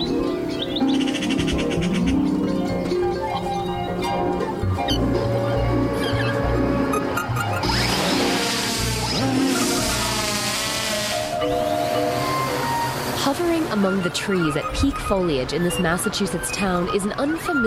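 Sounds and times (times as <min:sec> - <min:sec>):
bird calls chirping and warbling: 0:00.0 - 0:08.0, 0:13.4 - 0:17.6
bright hissing wash: 0:07.6 - 0:14.4
speech: 0:13.9 - 0:17.6.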